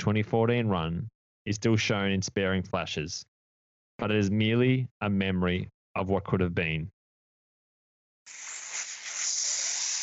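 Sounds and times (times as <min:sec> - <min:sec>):
speech: 0:00.0 - 0:03.3, 0:04.0 - 0:07.0, 0:08.3 - 0:08.6
sizzling hiss: 0:08.3 - 0:10.0.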